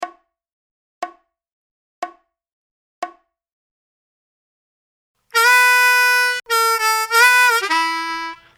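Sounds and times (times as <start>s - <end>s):
slow harmonica blues lick: 5.4s - 8.5s.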